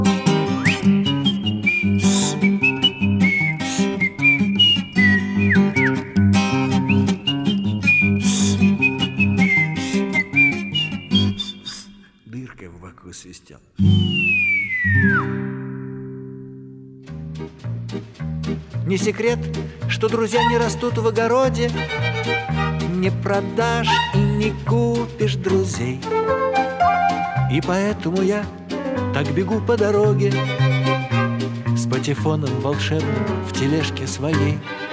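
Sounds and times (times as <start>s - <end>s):
steady musical accompaniment: 0.0s - 11.5s, 13.8s - 34.9s
bright whistled melody: 0.0s - 12.1s, 13.8s - 15.5s, 23.8s - 24.6s, 26.0s - 28.2s
speech: 19.1s - 22.4s, 23.0s - 26.4s, 27.5s - 28.6s, 29.2s - 30.6s, 32.0s - 34.8s.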